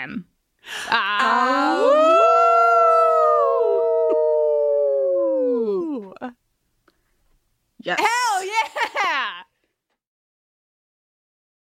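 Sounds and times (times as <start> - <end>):
speech: 0.0 - 2.1, 7.8 - 8.2
several people howling like wolves: 0.9 - 6.3.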